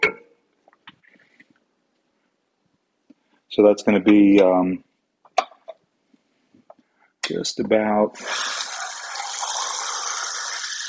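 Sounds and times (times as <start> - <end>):
speech: 3.5 - 4.9, 7.3 - 8.5
water poured from a can into a pot: 8.2 - 10.8.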